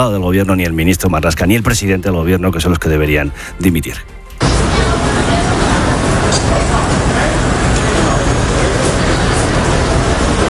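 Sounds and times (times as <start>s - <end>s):
speech: 0.0s - 4.2s
busy morning street traffic roar in Manhattan New York City: 4.4s - 10.5s
crowd babble on a busy Manhattan street: 4.4s - 10.5s.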